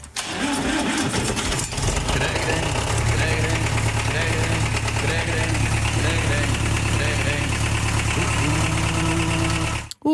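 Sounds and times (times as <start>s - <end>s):
tractor engine running: 0.2s - 9.9s
person singing along: 2.2s - 7.6s, 8.2s - 10.0s.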